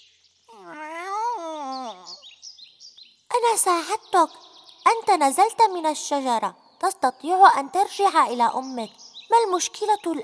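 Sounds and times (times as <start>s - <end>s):
long drawn-out cat meow: 0.5s - 2.2s
speech: 3.5s - 10.2s.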